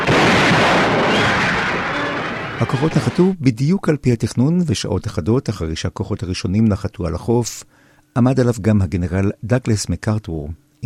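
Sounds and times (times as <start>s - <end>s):
naval guns and rocket ships firing during an amphibious landing in the Philippines: 0.0s - 3.2s
speech: 2.6s - 10.8s.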